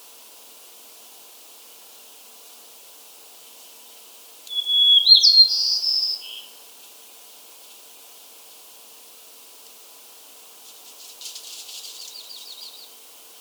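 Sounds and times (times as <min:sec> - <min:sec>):
white-crowned sparrow gambelii song: 0:04.5 - 0:06.7, 0:11.0 - 0:13.1.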